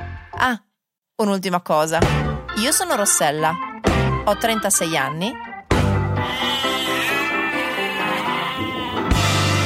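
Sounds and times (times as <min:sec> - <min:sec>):
speech: 0:00.4 - 0:05.4
goat bleating: 0:06.2 - 0:09.4.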